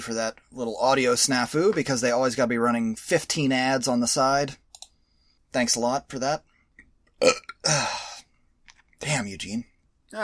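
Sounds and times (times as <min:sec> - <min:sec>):
speech: 0:00.0 - 0:04.6, 0:05.5 - 0:06.5, 0:07.2 - 0:08.1, 0:09.0 - 0:10.2
person burping: 0:07.2 - 0:08.2.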